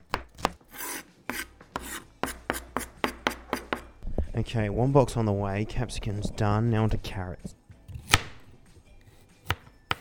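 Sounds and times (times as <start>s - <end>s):
knife chopping vegetables on cutting board: 0.0s - 3.9s, 7.9s - 8.5s, 9.4s - 9.9s
speech: 4.4s - 7.6s.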